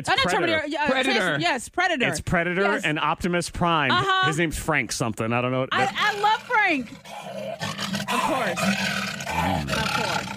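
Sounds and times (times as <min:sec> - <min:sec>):
speech: 0:00.0 - 0:10.3
man roaring like a lion into garbage can: 0:07.6 - 0:10.3.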